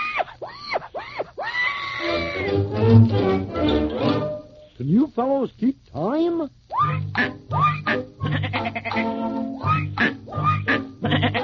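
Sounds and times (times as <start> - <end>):
pig squealing: 0.0 - 3.5, 6.7 - 11.4
speech: 4.8 - 7.7.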